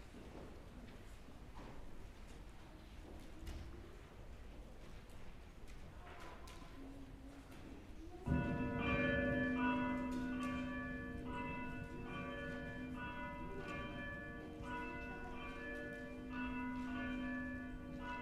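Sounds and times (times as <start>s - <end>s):
church bells ringing to call worship: 8.3s - 18.2s.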